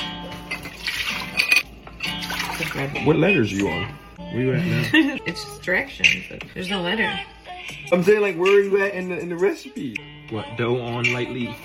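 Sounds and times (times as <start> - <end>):
warm water pouring into a container for dough: 2.2 - 2.9
speech: 2.6 - 11.6.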